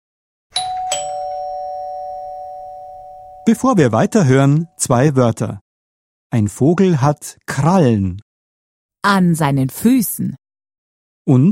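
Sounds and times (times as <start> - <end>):
doorbell ringing: 0.5 - 4.6
speech: 3.4 - 5.6, 6.3 - 8.2, 9.0 - 10.4, 11.2 - 11.5.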